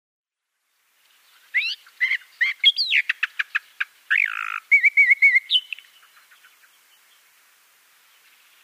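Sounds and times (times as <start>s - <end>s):
Eastern Orphean Warbler singing: 1.1s - 7.3s, 8.0s - 8.6s.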